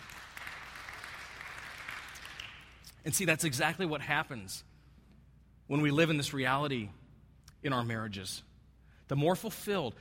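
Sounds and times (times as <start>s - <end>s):
audience applause at a religious talk: 0.0s - 2.7s
speech: 3.0s - 4.7s, 5.7s - 7.0s, 7.6s - 8.5s, 9.1s - 9.9s.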